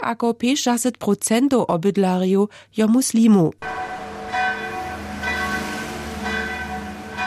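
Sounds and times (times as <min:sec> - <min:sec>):
speech: 0:00.0 - 0:03.9
bells of an old Serbian Orthodox church in Sarajevo ringing for mass: 0:03.6 - 0:07.2.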